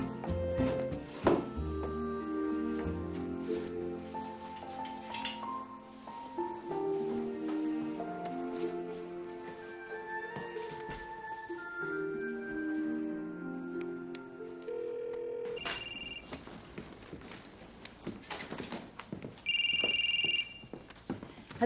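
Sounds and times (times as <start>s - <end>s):
soft tonal music: 0.0s - 17.6s
ringing tone of an outgoing phone call from a cabin: 14.6s - 16.4s, 19.5s - 20.8s.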